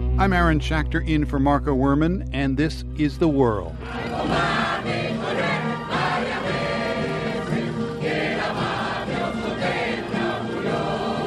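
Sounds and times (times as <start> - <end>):
speech: 0.2 - 5.1
large crowd singing a national anthem: 3.8 - 11.2.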